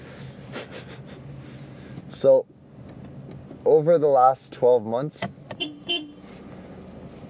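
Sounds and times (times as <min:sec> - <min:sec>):
low traffic rumble: 0:00.0 - 0:07.2
speech: 0:02.2 - 0:02.6, 0:03.6 - 0:05.4
car horn honk: 0:05.5 - 0:06.3.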